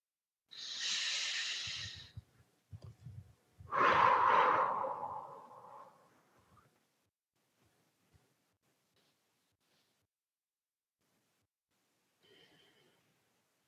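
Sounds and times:
deep exhale during a guided relaxation: 0:00.6 - 0:02.2, 0:03.7 - 0:06.0.

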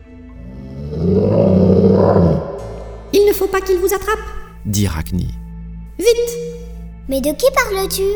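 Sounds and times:
deep ominous howl: 0:00.0 - 0:03.3
speech: 0:03.5 - 0:05.4, 0:07.1 - 0:08.1.

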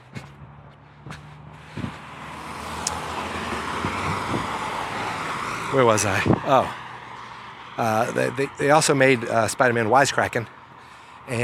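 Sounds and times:
footsteps tapping: 0:00.0 - 0:03.1
car passing on road: 0:00.0 - 0:11.4
speech: 0:05.7 - 0:06.8, 0:07.8 - 0:10.6, 0:11.3 - 0:11.4.

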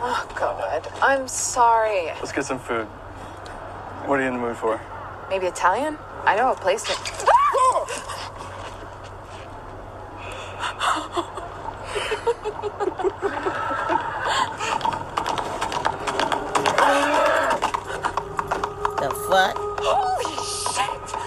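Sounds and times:
horse hooves clip-clopping on a hard street: 0:00.0 - 0:02.8, 0:06.3 - 0:10.0, 0:12.6 - 0:21.2
speech: 0:00.2 - 0:03.0, 0:04.0 - 0:07.4
breathy voices: 0:10.1 - 0:12.3, 0:13.4 - 0:15.1, 0:16.3 - 0:21.2
laughter: 0:10.6 - 0:14.9.

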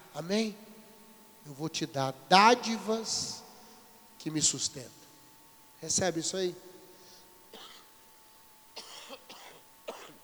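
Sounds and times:
steady hum: 0:00.0 - 0:10.2
speech: 0:00.2 - 0:00.6, 0:01.4 - 0:03.4, 0:04.2 - 0:05.0, 0:05.8 - 0:06.7
dry coughs: 0:07.5 - 0:07.9, 0:08.8 - 0:10.2.

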